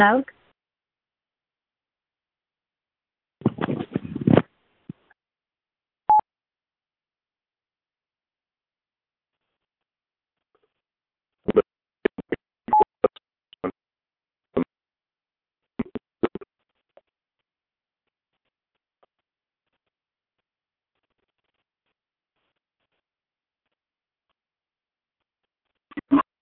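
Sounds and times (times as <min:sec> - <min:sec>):
speech: 0:00.0 - 0:00.4
crackling static: 0:03.4 - 0:05.1, 0:11.5 - 0:12.9, 0:15.8 - 0:17.1.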